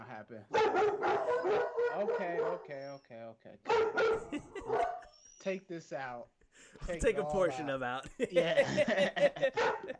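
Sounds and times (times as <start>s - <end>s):
speech: 0.2s - 9.9s
dog barking and howling outside: 0.5s - 2.7s, 3.7s - 5.1s, 9.4s - 9.9s
laughter: 4.1s - 5.1s, 8.0s - 9.9s.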